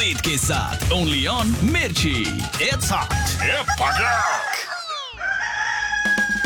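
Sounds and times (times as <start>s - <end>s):
speech: 0.0s - 4.7s
rooster crowing: 3.2s - 6.4s.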